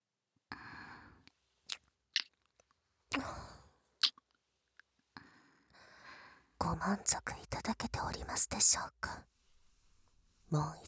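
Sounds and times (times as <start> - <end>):
breathing: 0.5 - 1.3, 5.2 - 6.6
soft wet kisses and lip smacks to both ears: 1.7 - 2.4, 3.1 - 3.4
speech: 6.8 - 9.3, 10.5 - 10.8.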